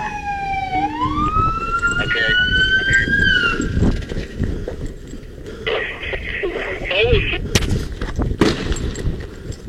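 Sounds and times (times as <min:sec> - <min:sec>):
busy rumbling noise: 0:00.0 - 0:09.6
gunshot from a police service pistol: 0:07.5 - 0:08.9.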